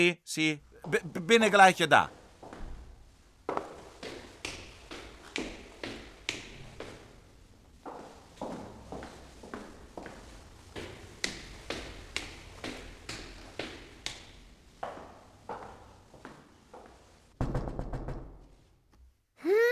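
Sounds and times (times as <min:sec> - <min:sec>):
speech: 0:00.0 - 0:02.2
pizza delivery man running up a staircase: 0:03.5 - 0:07.2, 0:07.9 - 0:16.4
knocking on a door: 0:17.4 - 0:18.5.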